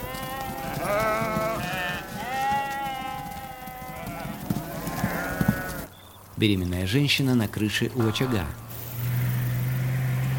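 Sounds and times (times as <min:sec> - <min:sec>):
flock of sheep bleating while driven by a rider on horseback: 0:00.0 - 0:05.9, 0:08.9 - 0:10.3
speech: 0:06.4 - 0:08.7.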